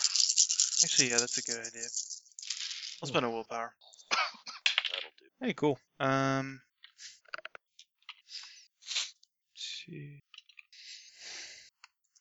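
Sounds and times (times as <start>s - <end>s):
dice clattering across a hard surface during a tabletop game: 0.0s - 3.2s, 4.6s - 5.1s
speech: 0.8s - 2.1s, 3.0s - 4.0s, 5.4s - 7.1s, 9.9s - 10.3s.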